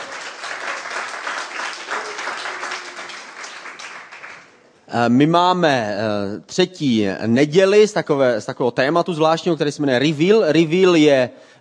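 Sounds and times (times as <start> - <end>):
crowd applauding: 0.0 - 4.7
speech: 4.9 - 11.6.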